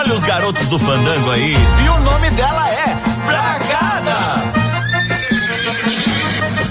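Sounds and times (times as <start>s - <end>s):
speech: 0.1s - 4.5s
mare neighing in a stable: 4.8s - 6.6s.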